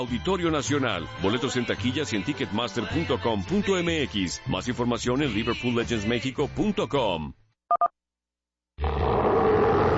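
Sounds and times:
speech: 0.0 - 7.9
big cat roaring: 8.8 - 9.9.

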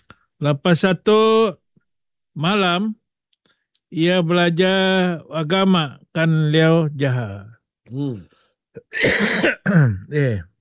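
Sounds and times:
speech: 0.4 - 1.6, 2.4 - 3.0, 3.9 - 10.5
harsh throaty genuine coughing: 8.8 - 10.1.

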